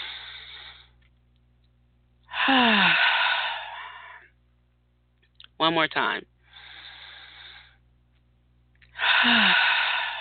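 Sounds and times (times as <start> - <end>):
deep breath taken on cue: 0.0 - 1.0, 2.3 - 4.3, 6.4 - 7.8, 8.9 - 10.2
speech: 2.5 - 2.9, 5.6 - 6.3, 9.2 - 9.6.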